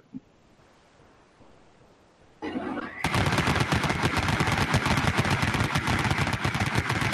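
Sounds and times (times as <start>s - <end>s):
Vulcan rotary machine gun sound effect spinning up and firing: 3.0s - 7.1s.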